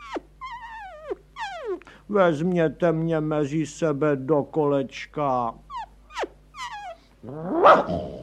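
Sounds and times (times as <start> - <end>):
dogs yelping: 0.0 - 1.8, 5.7 - 8.2
speech: 2.1 - 5.6, 7.2 - 8.2
dogs barking and growling: 7.2 - 8.2.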